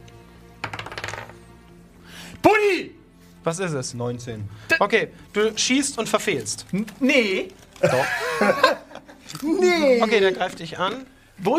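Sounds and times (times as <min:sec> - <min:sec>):
die rolled onto a hard table surface during a game: 0:00.6 - 0:01.4
speech: 0:02.4 - 0:11.5
laughter: 0:07.8 - 0:10.0.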